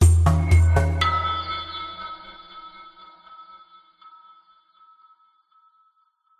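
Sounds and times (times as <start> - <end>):
percussive musical logo branding signature: 0.0 - 1.7.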